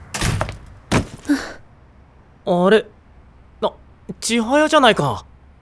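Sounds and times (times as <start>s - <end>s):
office door pushed open with a broad rustling scrape: 0.0s - 1.5s
speech: 2.4s - 2.9s, 4.3s - 5.3s.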